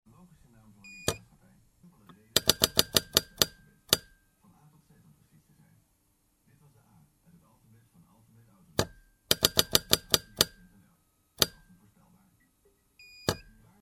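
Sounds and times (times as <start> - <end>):
clicks: 2.0 - 4.2, 8.8 - 10.6, 11.4 - 11.7.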